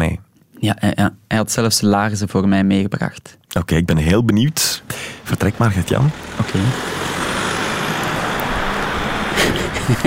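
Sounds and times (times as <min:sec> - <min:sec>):
speech: 0:00.6 - 0:07.2, 0:09.9 - 0:10.0
road traffic passing: 0:04.0 - 0:10.0
laughter: 0:09.2 - 0:10.0.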